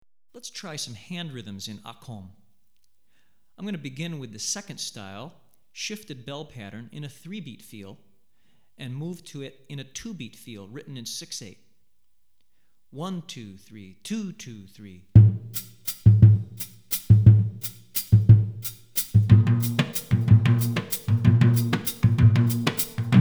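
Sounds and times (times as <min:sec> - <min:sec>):
West African rhythm on drumset: 0:15.2 - 0:23.1.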